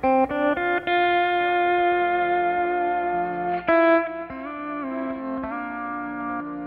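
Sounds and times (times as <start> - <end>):
steel guitar playing slow crying country melody: 0.0 - 6.6.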